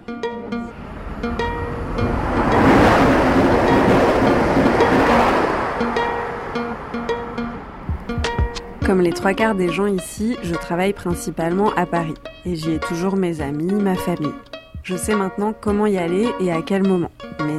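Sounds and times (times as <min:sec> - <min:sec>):
steady tonal hums in a train station: 0:00.0 - 0:13.8
rushing roar in a train station: 0:00.7 - 0:08.8
speech: 0:08.9 - 0:17.5.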